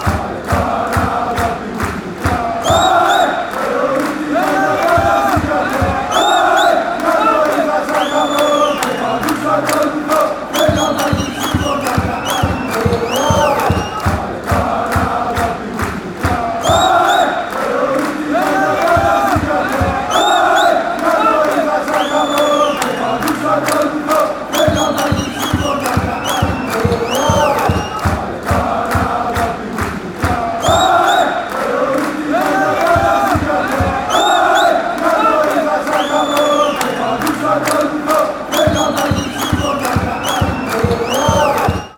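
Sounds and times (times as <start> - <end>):
football chant: 0.0 - 41.9.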